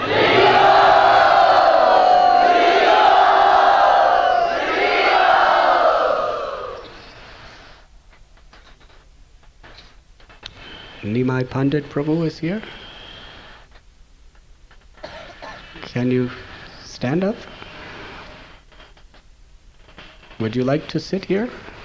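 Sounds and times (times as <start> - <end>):
quiet crowd murmur: 0.0 - 7.0
audience cheering and whooping in an enthusiastic welcome at a gathering: 0.0 - 7.1
speech: 11.4 - 12.8, 16.0 - 17.6, 20.4 - 21.7.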